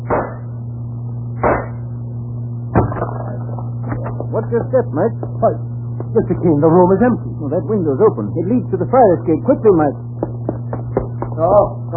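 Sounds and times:
gunshots fired to blow a lock off, radio drama sound effect: 0:00.0 - 0:00.4, 0:01.4 - 0:01.8
constant low hum: 0:00.0 - 0:11.9
speech: 0:04.5 - 0:10.1, 0:11.4 - 0:11.9.

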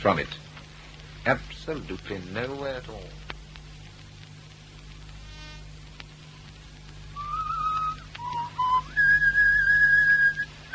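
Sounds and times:
speech: 0:00.0 - 0:00.5, 0:01.2 - 0:03.2
faint low hum: 0:00.0 - 0:10.7
person whistling a short tune: 0:07.2 - 0:10.7.

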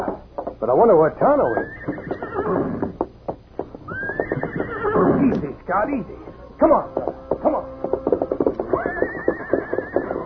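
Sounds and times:
speech: 0:00.6 - 0:02.8, 0:05.2 - 0:07.8
restless paint horse whinnying while rearing: 0:01.3 - 0:03.0, 0:03.8 - 0:05.5, 0:06.1 - 0:10.2
rhythmic low pulses: 0:05.2 - 0:08.7.

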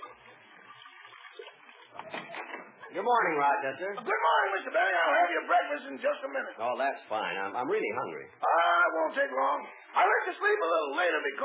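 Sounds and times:
cognac pouring into a dish: 0:00.0 - 0:02.8
speech: 0:02.9 - 0:11.4.

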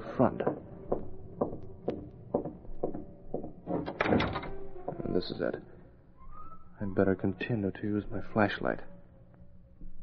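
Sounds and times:
wooden door knocking and creaking as it is worked open: 0:00.0 - 0:05.6
speech: 0:00.2 - 0:00.5, 0:05.2 - 0:05.8, 0:06.8 - 0:08.9.

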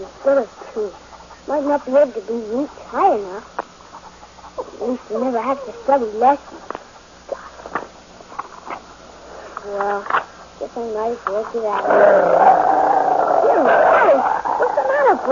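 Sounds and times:
speech: 0:00.0 - 0:03.6, 0:04.6 - 0:06.8, 0:09.7 - 0:14.4, 0:15.1 - 0:15.3
dog growling and snarling: 0:04.5 - 0:06.2, 0:11.7 - 0:15.3.

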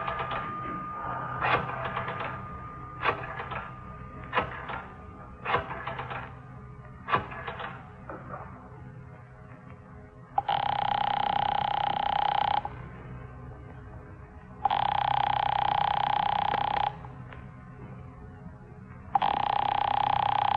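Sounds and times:
telephone ringing: 0:00.0 - 0:06.3, 0:10.4 - 0:12.8, 0:14.6 - 0:17.1, 0:19.2 - 0:20.5
low hum: 0:00.0 - 0:20.5.

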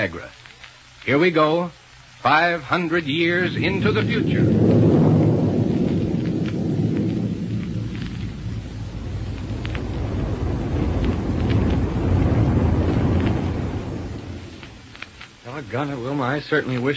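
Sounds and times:
speech: 0:00.0 - 0:00.4, 0:01.0 - 0:04.9, 0:15.8 - 0:16.9
rocket plane roaring in flight: 0:02.8 - 0:15.4.

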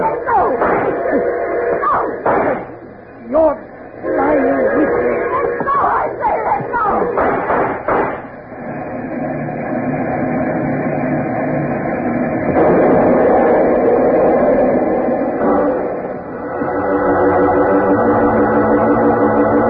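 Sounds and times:
train rumbling toward a crossing: 0:00.0 - 0:19.6
clattering knocking bangs: 0:00.4 - 0:02.8, 0:05.5 - 0:08.4.

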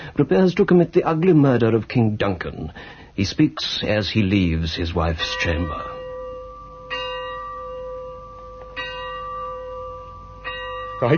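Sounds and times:
speech: 0:00.2 - 0:05.9, 0:11.0 - 0:11.1
single bell tolling a knell: 0:05.2 - 0:11.1.

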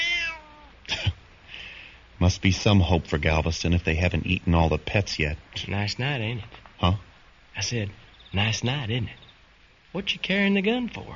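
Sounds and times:
cat meowing: 0:00.0 - 0:00.8
speech: 0:02.2 - 0:09.2, 0:09.9 - 0:11.1.

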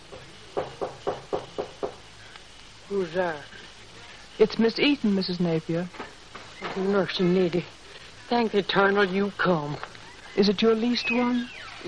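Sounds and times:
firm knocking on a wooden cabin door: 0:00.6 - 0:02.0
speech: 0:02.9 - 0:03.6, 0:04.4 - 0:06.0, 0:06.8 - 0:11.8.

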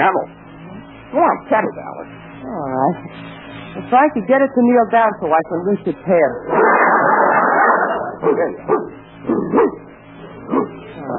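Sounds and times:
speech: 0:00.0 - 0:00.4, 0:01.1 - 0:07.1, 0:08.2 - 0:09.9
broadband noise: 0:00.0 - 0:11.1
dog barking: 0:06.5 - 0:09.8, 0:10.4 - 0:10.8.

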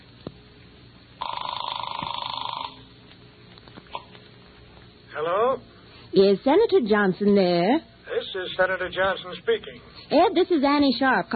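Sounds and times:
telephone ringing over the line: 0:01.2 - 0:02.9
speech: 0:05.2 - 0:11.3.

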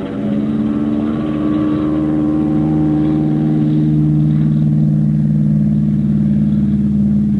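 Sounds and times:
fighter plane piston engine revving for takeoff: 0:00.0 - 0:07.3.

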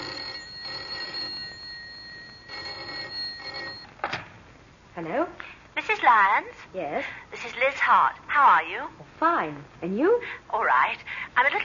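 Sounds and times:
telephone ringing in electronic bursts: 0:00.0 - 0:04.0
speech: 0:05.0 - 0:11.6.

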